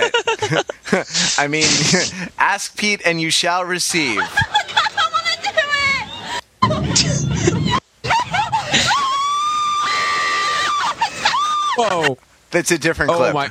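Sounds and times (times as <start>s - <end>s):
laughter: 0.0s - 2.4s, 4.1s - 12.2s
speech: 0.5s - 4.7s, 11.8s - 13.4s
crowd of girls screaming: 8.1s - 11.8s.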